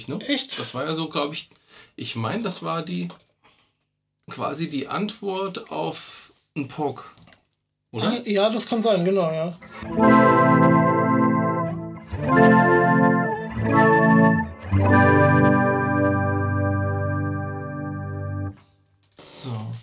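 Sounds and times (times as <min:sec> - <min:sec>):
speech: 0:00.0 - 0:03.3, 0:04.3 - 0:07.2, 0:07.9 - 0:10.3
sustained guitar chords through an octave-overtone modulation effect pedal: 0:09.8 - 0:18.6.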